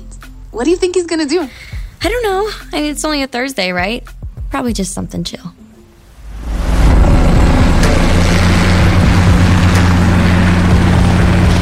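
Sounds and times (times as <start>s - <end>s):
speech: 0.5s - 5.6s
helicopter rotors roaring: 6.4s - 11.6s.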